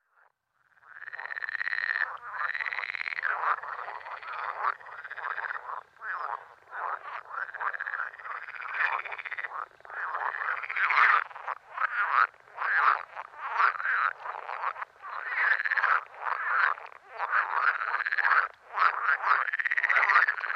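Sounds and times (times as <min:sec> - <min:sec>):
green frog: 0:00.0 - 0:20.5.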